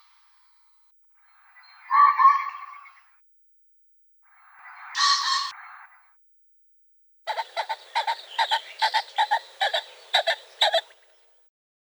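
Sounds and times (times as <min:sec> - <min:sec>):
Phasianus colchicus calling: 0:01.9 - 0:03.0, 0:07.3 - 0:11.3.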